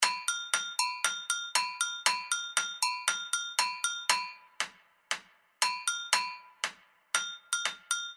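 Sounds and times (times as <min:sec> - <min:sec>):
agogo bells in passinho carnival style: 0:00.0 - 0:04.6, 0:05.6 - 0:08.1.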